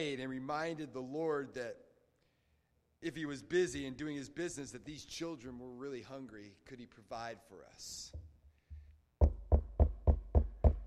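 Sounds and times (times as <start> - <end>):
speech: 0.0 - 1.9, 3.0 - 8.2
baker knocking on an orphanage door: 9.2 - 10.8.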